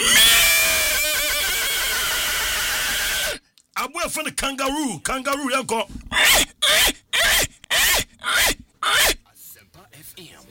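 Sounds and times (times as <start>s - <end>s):
horse whinnying: 0.0s - 3.4s, 6.1s - 9.2s
speech: 4.1s - 7.0s.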